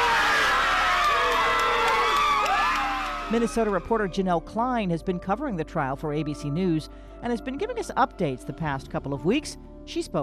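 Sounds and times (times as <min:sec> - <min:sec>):
scattered claps: 0:00.0 - 0:03.8
large crowd cheering and shouting: 0:00.0 - 0:03.9
speech: 0:03.3 - 0:10.2.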